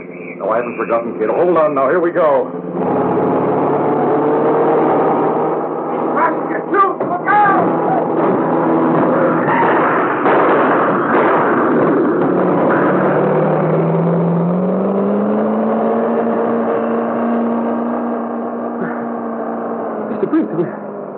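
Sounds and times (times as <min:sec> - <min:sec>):
car engine roaring at speed driving at a police roadblock: 0:00.0 - 0:21.1
speech: 0:00.4 - 0:03.0, 0:06.3 - 0:08.4.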